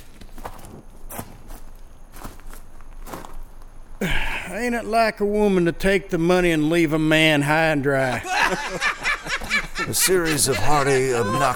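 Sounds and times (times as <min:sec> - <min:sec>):
crunchy gritty footsteps at a walking pace: 0:00.0 - 0:04.0
dense bed of noise: 0:00.0 - 0:11.5
laughter: 0:04.0 - 0:04.7, 0:07.9 - 0:11.5
speech: 0:04.0 - 0:09.0, 0:09.9 - 0:11.5.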